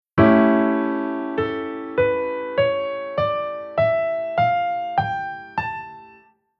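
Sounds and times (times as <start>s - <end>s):
chords and scale with secondary dominant: 0.2s - 6.3s.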